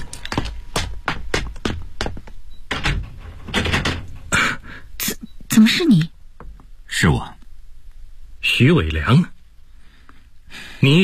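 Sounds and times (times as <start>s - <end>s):
door being opened: 0.0s - 4.4s
speech: 5.6s - 6.1s, 7.0s - 7.4s, 8.6s - 9.4s, 10.8s - 11.0s.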